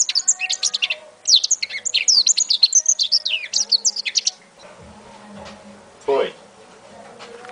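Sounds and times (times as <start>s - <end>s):
African citril song of high twittering chirps and trills: 0.0s - 4.4s.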